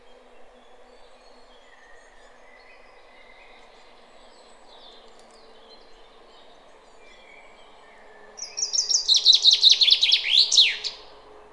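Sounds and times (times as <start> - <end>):
common chaffinch Fringilla coelebs singing: 0.0 - 11.3.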